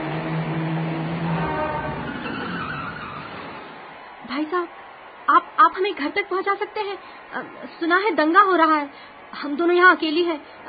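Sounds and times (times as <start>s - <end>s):
car driving up with engine and tyre noise: 0.0s - 3.8s
speech: 4.3s - 10.6s.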